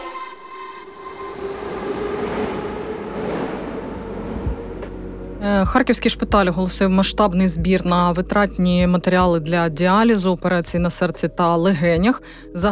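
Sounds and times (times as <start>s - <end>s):
metro train rumbling roar at an underground station: 1.0s - 5.4s
metro train rail clatter at an underground station: 1.4s - 5.0s
speech: 5.6s - 12.7s.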